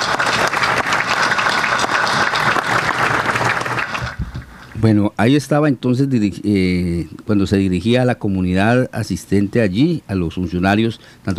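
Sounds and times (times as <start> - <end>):
sizable audience applause: 0.0 - 4.6
speech: 4.8 - 11.3.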